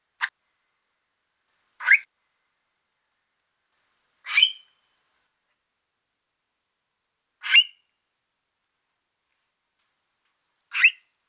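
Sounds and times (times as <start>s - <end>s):
captive Stone curlew chick Burhinus oedicnemus calling: 4.2s - 4.8s, 7.4s - 7.9s, 10.7s - 11.1s.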